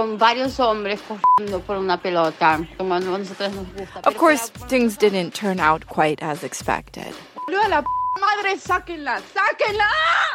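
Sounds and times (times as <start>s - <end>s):
speech: 0.0s - 10.3s
overlapping voices chattering: 0.9s - 5.8s
phone message notification beep: 1.2s - 1.5s, 7.4s - 8.2s.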